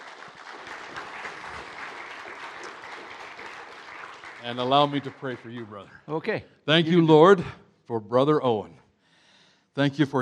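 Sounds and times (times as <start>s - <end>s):
room full of people applauding: 0.0s - 6.1s
speech: 4.4s - 8.8s, 9.8s - 10.2s.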